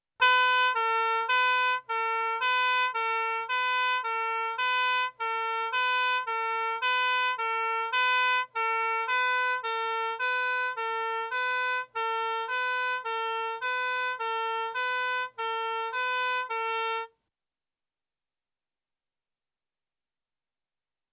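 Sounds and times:
emergency vehicle two-tone horn siren: 0:00.2 - 0:17.1.

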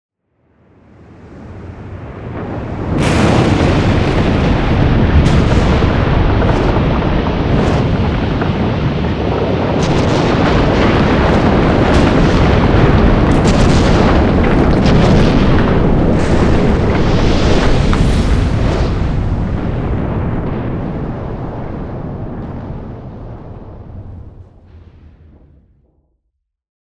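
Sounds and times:
volcano erupting: 0:00.7 - 0:25.6.

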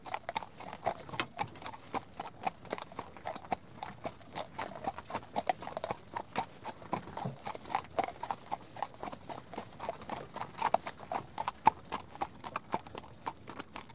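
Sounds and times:
horse walking while pulling, hooves clopping: 0:00.0 - 0:13.9.

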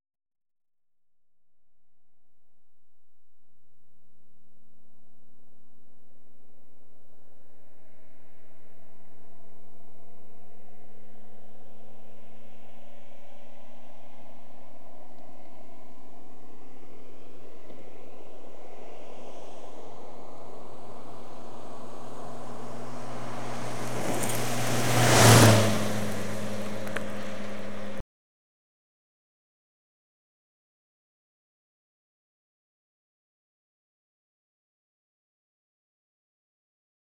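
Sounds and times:
Ford Fiesta 1-1 L automatic hatchback heard from outside: 0:20.2 - 0:28.0.

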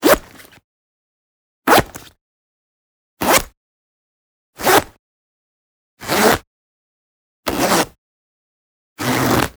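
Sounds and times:
synthetic polyester jacket zip zipping and unzipping: 0:00.0 - 0:00.6, 0:03.2 - 0:03.5, 0:04.6 - 0:04.9, 0:06.0 - 0:06.4, 0:07.5 - 0:08.0, 0:09.0 - 0:09.5.

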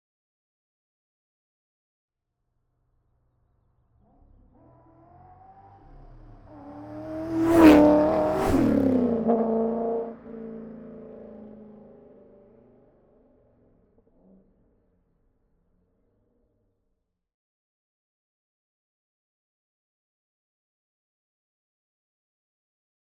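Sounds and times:
2004 Corvette C5 driving by: 0:04.1 - 0:13.7.

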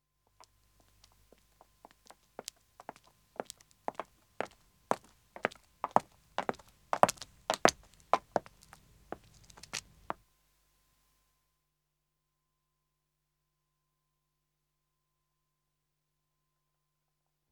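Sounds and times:
footsteps of two women walking on pavement: 0:00.4 - 0:10.2.

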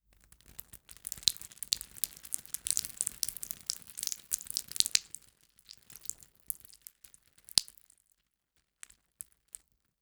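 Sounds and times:
small blood splatter on concrete: 0:01.2 - 0:06.9, 0:07.5 - 0:07.8.

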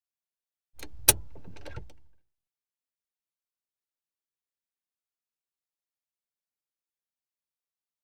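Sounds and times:
automatic handbrake released in car interior: 0:00.8 - 0:02.1.

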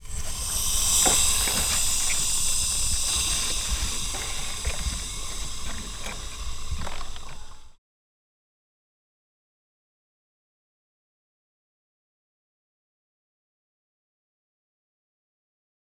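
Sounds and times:
heavily damaged car engine running with no oil: 0:00.0 - 0:07.8
water hissing from damaged car engine: 0:00.0 - 0:07.8.

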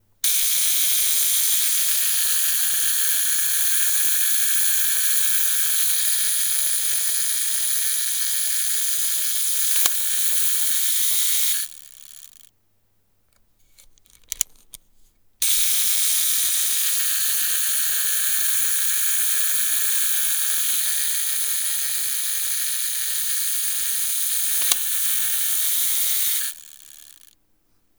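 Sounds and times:
old camera self timer mechanism: 0:00.2 - 0:12.4, 0:15.4 - 0:27.3.

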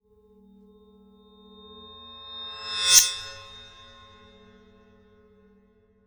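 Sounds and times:
metallic ring impact: 0:02.5 - 0:03.4.

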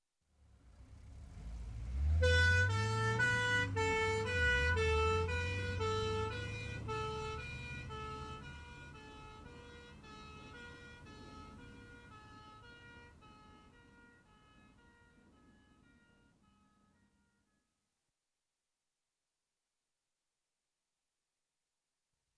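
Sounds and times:
ambulance departing with two-tone siren: 0:01.4 - 0:17.5.

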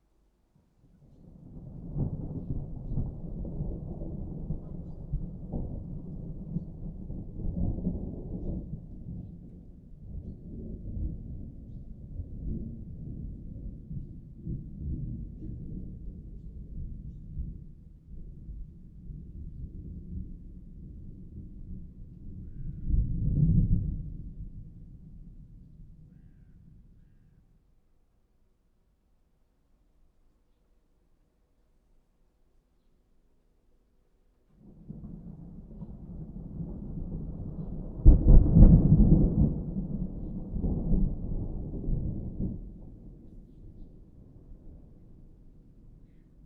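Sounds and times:
distant thunder rumble of a summer morning thunderstorm: 0:01.2 - 0:26.3, 0:34.6 - 0:46.4.

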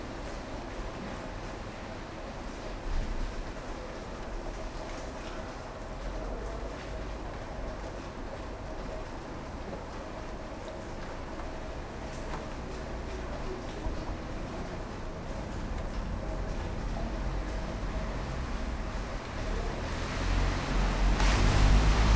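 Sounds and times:
rain: 0:00.0 - 0:22.1
traffic: 0:12.8 - 0:22.1.

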